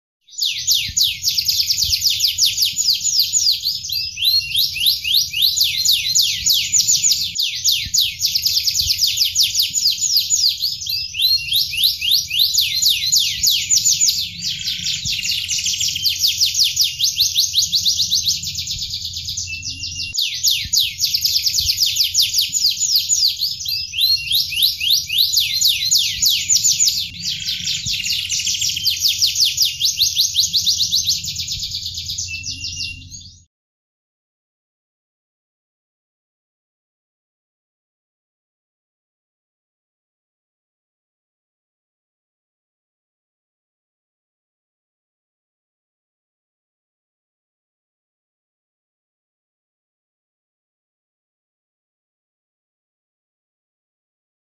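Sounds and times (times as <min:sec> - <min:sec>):
nagasari canary singing: 0:00.3 - 0:33.5.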